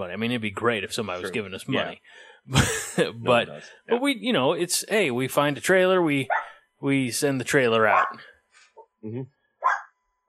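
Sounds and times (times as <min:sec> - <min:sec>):
speech: 0:00.0 - 0:08.3, 0:09.0 - 0:09.4
laughter: 0:02.5 - 0:03.6
dog barking: 0:06.3 - 0:06.5, 0:07.9 - 0:08.2, 0:09.6 - 0:10.0.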